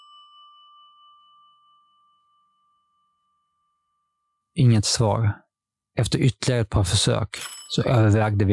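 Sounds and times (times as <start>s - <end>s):
doorbell ringing with a sustained bright tone: 0.0s - 3.8s
speech: 4.6s - 5.4s, 6.0s - 8.5s.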